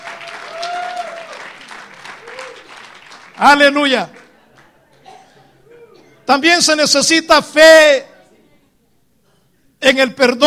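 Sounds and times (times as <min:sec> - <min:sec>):
congregation applauding during a church sermon: 0:00.0 - 0:04.8
speech: 0:03.4 - 0:04.2, 0:06.3 - 0:08.1, 0:09.8 - 0:10.4.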